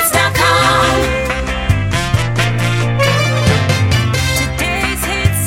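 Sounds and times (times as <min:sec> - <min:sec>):
134bpm jingle: 0:00.1 - 0:05.3.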